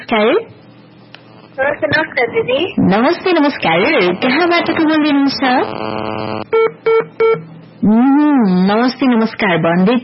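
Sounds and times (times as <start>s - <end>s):
speech: 0.1s - 0.6s, 1.6s - 10.0s
steady buzzy phone-line tone of a call disconnecting: 3.0s - 7.0s
longer phone-line tone that rises at its start: 3.8s - 7.0s.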